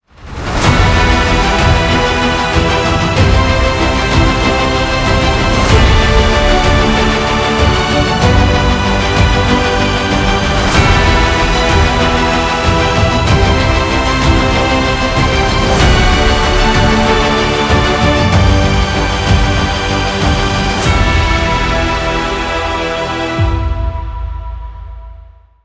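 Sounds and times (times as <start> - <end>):
epic orchestral awards opening music: 0.0 - 25.6.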